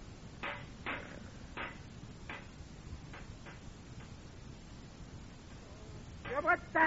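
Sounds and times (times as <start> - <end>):
rock hammering a bent metal campfire grate to straighten it: 0.4 - 4.2
speech: 6.4 - 6.8.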